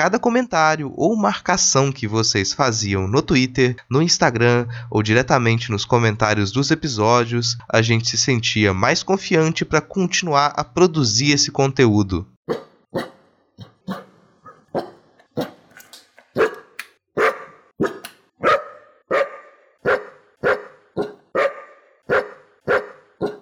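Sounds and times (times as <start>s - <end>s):
speech: 0.0s - 13.1s
dog barking: 12.5s - 15.6s, 16.3s - 23.4s.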